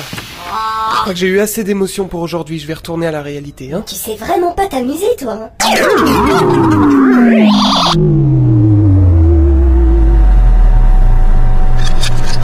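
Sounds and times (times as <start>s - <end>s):
speech: 0.6s - 8.5s
microwave oven mechanical whine and hum winding down: 5.6s - 12.4s
microwave oven warbling rising tones: 5.6s - 12.4s.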